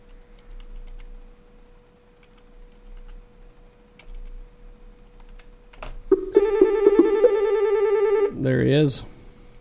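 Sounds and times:
low steady hum: 0.0 - 9.6
telephone ringing with incoming call: 6.1 - 8.4
speech: 8.4 - 9.1.

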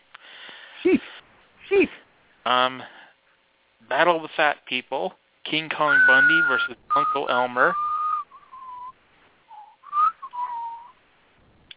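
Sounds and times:
speech: 0.8 - 1.1, 1.7 - 3.0, 3.9 - 7.9
person whistling a short wavering tune: 5.9 - 10.9.

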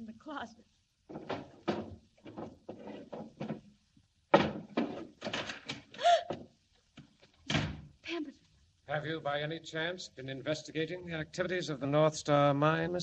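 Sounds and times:
speech: 0.3 - 0.6, 8.9 - 13.0
office desk drawers opening and shutting: 1.1 - 5.9, 7.4 - 7.9.

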